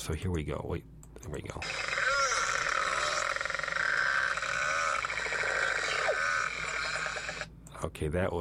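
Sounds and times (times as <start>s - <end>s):
speech: 0.0s - 1.9s, 7.8s - 8.4s
beluga whale echolocation clicking buzzes: 1.6s - 7.5s
beluga whales chattering with squeaky whistles, chirps and croaking pulsed calls: 1.6s - 7.5s.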